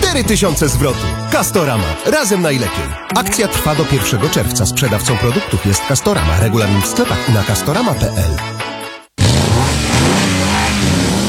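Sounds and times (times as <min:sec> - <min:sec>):
speech: 0:00.2 - 0:08.5
car engine revving with a deep growling roar: 0:09.2 - 0:11.2.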